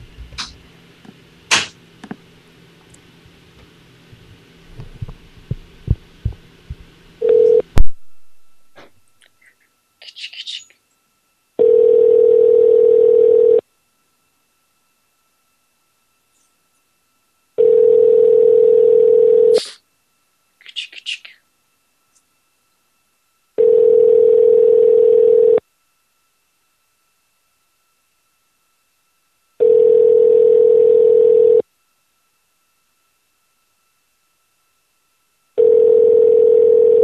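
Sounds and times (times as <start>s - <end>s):
telephone ringback tone on a call being placed again: 7.2s - 7.6s, 11.6s - 13.6s, 17.6s - 19.6s, 23.6s - 25.6s, 29.6s - 31.6s, 35.6s - 37.0s.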